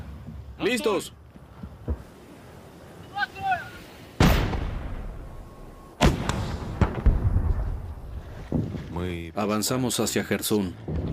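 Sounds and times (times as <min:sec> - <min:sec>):
speech: 0:00.6 - 0:01.2, 0:09.4 - 0:11.0
heavy weapons and artillery fire from enemy troops during an advance: 0:04.2 - 0:08.8.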